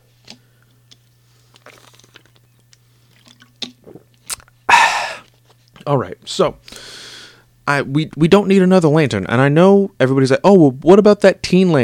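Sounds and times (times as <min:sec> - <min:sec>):
low steady hum: 0:00.0 - 0:11.8
person sipping and swallowing water from a glass: 0:01.0 - 0:05.8
speech: 0:05.8 - 0:06.8, 0:07.7 - 0:11.8.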